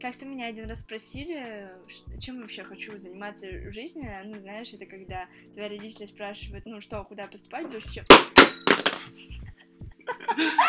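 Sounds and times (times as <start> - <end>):
speech: 0.0 - 9.4, 10.1 - 10.6
drinking glass hitting a hard surface: 8.1 - 9.1
laughter: 10.1 - 10.6.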